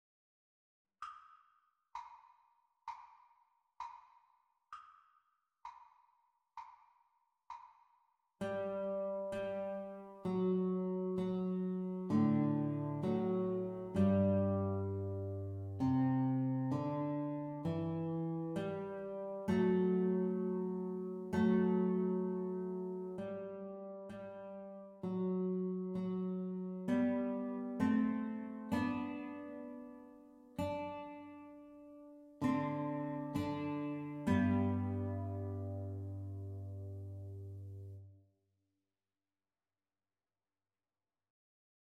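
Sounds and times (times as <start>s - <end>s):
guitar duet playalong practice teacher part: 8.4s - 38.0s.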